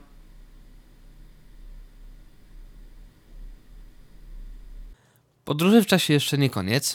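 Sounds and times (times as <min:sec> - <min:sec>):
steady computer whir with low humming tones: 0:00.0 - 0:05.0
constant recorder hiss: 0:00.0 - 0:06.9
speech: 0:05.5 - 0:06.9.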